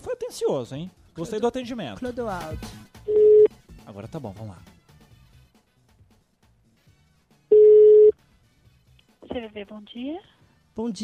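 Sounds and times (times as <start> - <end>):
speech: 0.3 - 3.2, 3.9 - 4.7, 9.3 - 11.0
telephone tone while dialing out on a call: 3.1 - 3.5, 7.5 - 8.1.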